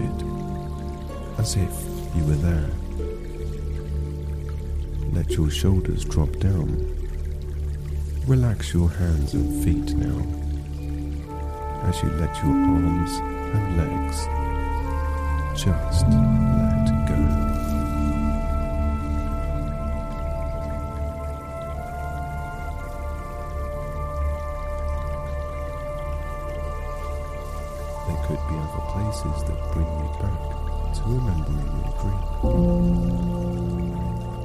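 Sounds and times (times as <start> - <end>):
gentle flowing stream water trickling: 0.0 - 34.4
sustained musical tones: 0.0 - 34.4
speech: 1.4 - 3.1, 5.2 - 7.0, 8.2 - 10.5, 11.8 - 14.4, 15.6 - 17.4, 29.1 - 33.6.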